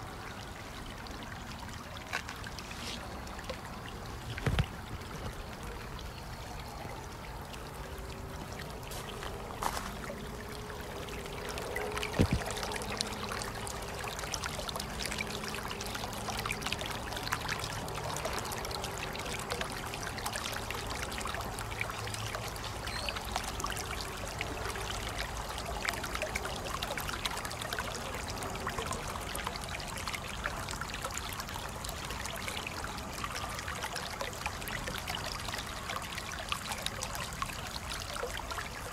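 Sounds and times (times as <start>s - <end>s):
small natural stream trickling and splashing: 0.0s - 38.9s.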